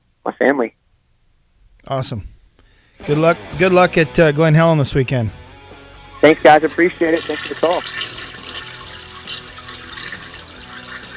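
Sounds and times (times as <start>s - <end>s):
speech: 0.4s - 0.8s, 1.8s - 2.4s, 3.0s - 5.4s, 6.2s - 8.3s
toilet flushing: 6.2s - 11.1s.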